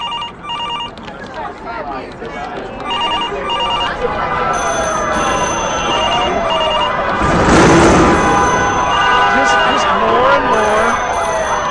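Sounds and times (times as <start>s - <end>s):
steady noise: 0.0s - 11.6s
emergency siren wailing: 2.8s - 11.6s.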